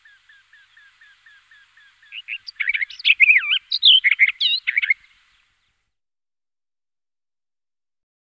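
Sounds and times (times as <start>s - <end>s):
barred warbler song: 0.0s - 5.9s.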